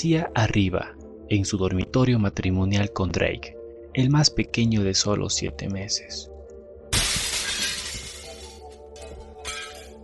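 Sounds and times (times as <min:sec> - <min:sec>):
speech: 0:00.0 - 0:06.3
glass shattering: 0:06.9 - 0:10.0
glass shards tinkling: 0:07.0 - 0:10.0.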